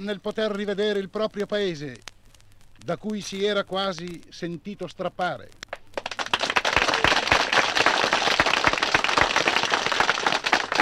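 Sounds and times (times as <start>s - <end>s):
speech: 0.0s - 2.1s, 2.8s - 5.6s
applause from a dense crowd under a pergola at a country wine arbor: 5.7s - 10.8s.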